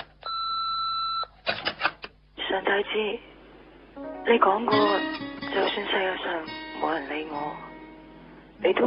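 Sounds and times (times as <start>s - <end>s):
telephone answering machine beeping: 0.2s - 1.3s
speech: 2.8s - 3.3s, 4.3s - 7.7s, 8.6s - 8.8s.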